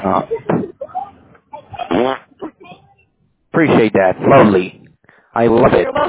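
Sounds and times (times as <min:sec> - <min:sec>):
speech: 0:00.0 - 0:00.7, 0:03.6 - 0:06.0
fart over a phone call: 0:01.8 - 0:02.3.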